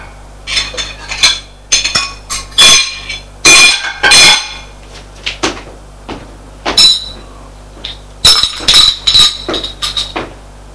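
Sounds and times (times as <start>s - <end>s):
dishes and cutlery clinking as a table is cleared after a meal: 0.5s - 4.7s, 8.3s - 10.2s.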